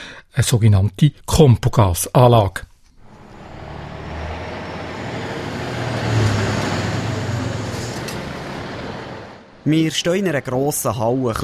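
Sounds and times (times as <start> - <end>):
speech: 0.4 - 2.7, 9.7 - 11.4
freight wagon engine rumbling driving into a biogas composting plant hall: 3.0 - 9.7.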